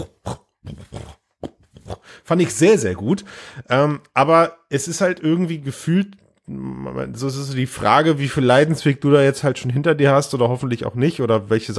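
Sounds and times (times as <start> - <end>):
voice imitating arm movement sounds in a virtual reality game: 0.0 - 2.2
speech: 2.3 - 11.7.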